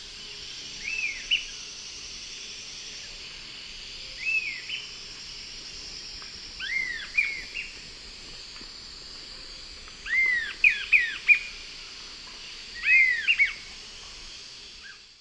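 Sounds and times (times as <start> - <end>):
insects hissing: 0.0 - 15.1
two Sirystes sibilator birds calling and singing in South American Eastern Lowlands: 0.8 - 1.6, 4.2 - 4.9, 6.6 - 7.8, 10.0 - 11.6, 12.8 - 13.6.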